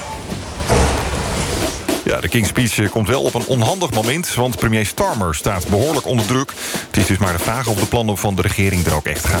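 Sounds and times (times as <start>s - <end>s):
heavy door slammed shut during a ceremony: 0.2s - 2.1s
speech: 2.2s - 9.3s.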